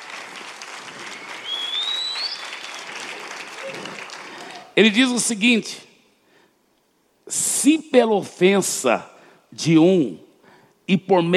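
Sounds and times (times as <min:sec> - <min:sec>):
audience applause: 0:00.0 - 0:04.8
faint whistle: 0:01.1 - 0:02.7
speech: 0:04.8 - 0:05.9, 0:07.6 - 0:10.3, 0:10.9 - 0:11.3.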